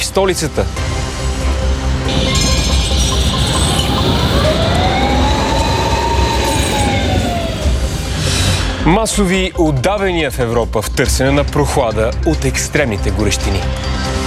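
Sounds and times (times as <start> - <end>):
speech: 0.2 - 1.0, 8.8 - 14.1
steady rumble of tram rail noise: 1.8 - 9.3
tram wheels squealing in heat over 30 degrees: 2.1 - 8.7.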